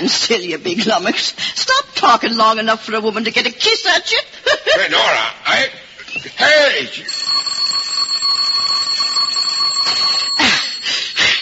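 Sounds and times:
speech: 0.0s - 7.5s
electric doorbell ringing: 7.1s - 11.3s.

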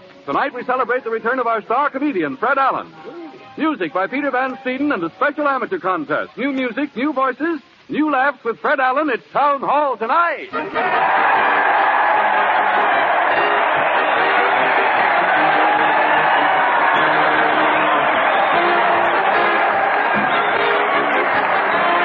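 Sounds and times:
speech: 0.2s - 11.6s
large crowd cheering, whooping and clapping: 10.5s - 22.0s.

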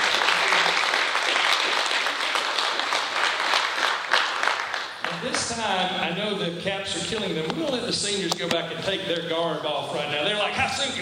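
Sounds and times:
audience applauding graduating seniors at a ceremony: 0.0s - 5.6s
speech: 5.5s - 11.0s.

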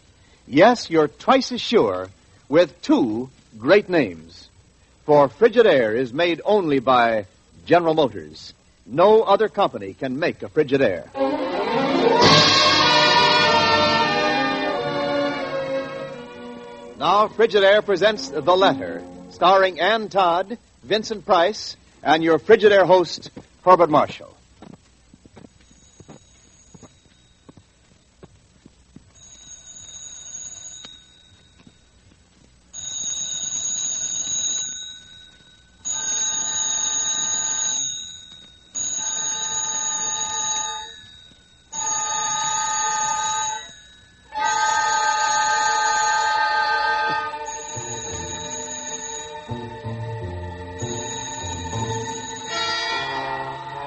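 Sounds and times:
speech: 0.5s - 4.5s, 5.1s - 12.6s, 17.0s - 24.4s
low music: 11.1s - 19.8s, 46.3s - 53.8s
telephone bell ringing: 25.6s - 27.5s, 29.2s - 31.8s, 32.7s - 49.9s, 50.7s - 53.8s.

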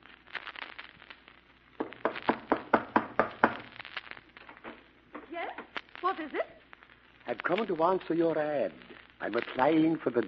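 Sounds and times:
man knocking firmly on a door: 1.8s - 3.6s
speech: 6.2s - 6.6s, 7.3s - 10.2s.

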